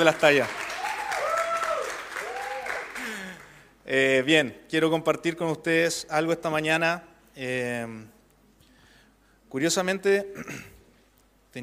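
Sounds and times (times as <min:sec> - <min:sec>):
speech: 0:00.0 - 0:00.6, 0:03.9 - 0:08.2, 0:09.5 - 0:10.7
audience applause: 0:00.0 - 0:03.6.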